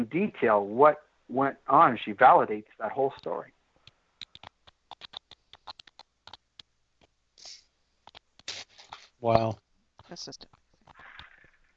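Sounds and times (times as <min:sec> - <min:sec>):
speech: 0:00.0 - 0:03.6, 0:09.2 - 0:10.5
typing on a computer keyboard into a chat: 0:04.2 - 0:06.7.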